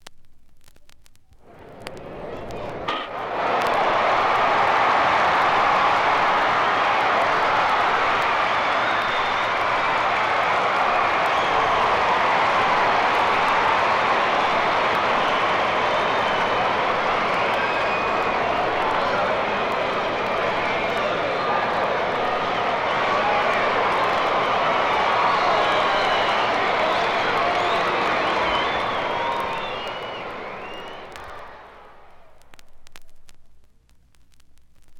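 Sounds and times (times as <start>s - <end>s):
baseball game: 1.3s - 33.3s.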